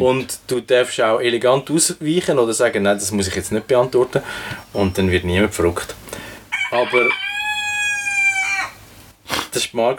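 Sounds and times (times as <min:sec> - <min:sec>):
speech: 0:00.0 - 0:07.2, 0:09.6 - 0:09.9
harsh squawk: 0:06.5 - 0:08.8
rooster crowing: 0:06.5 - 0:08.9.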